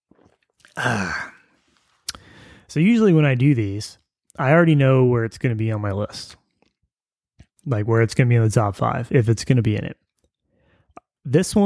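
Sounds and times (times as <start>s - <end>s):
mouth clicks and swallows sipping sparkling mineral water from a bottle: 0.1s - 0.8s, 1.8s - 2.4s, 10.2s - 11.2s
speech: 0.8s - 1.3s, 2.7s - 6.4s, 7.6s - 10.0s, 11.2s - 11.6s
loud breathy satisfied exhale: 0.8s - 2.7s.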